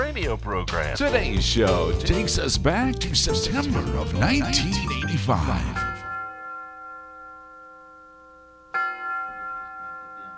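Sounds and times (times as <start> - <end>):
speech: 0.2 - 5.9
university tower bells chiming: 3.6 - 10.3.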